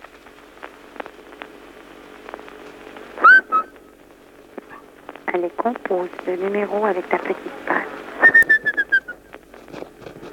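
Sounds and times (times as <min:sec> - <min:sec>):
faint noise: 0:00.0 - 0:10.3
person whistling birdlike call: 0:03.2 - 0:03.7, 0:08.2 - 0:09.2
speech: 0:05.3 - 0:07.9.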